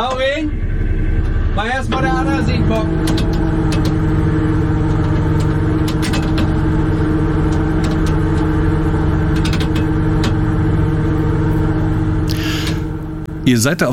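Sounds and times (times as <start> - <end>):
shrimp fishing boat diesel engine droning in the Wadden Sea while nets are put out: 0.0 - 13.9
faint clicks and clanks: 1.2 - 10.6
speech: 1.6 - 3.4, 13.5 - 13.9.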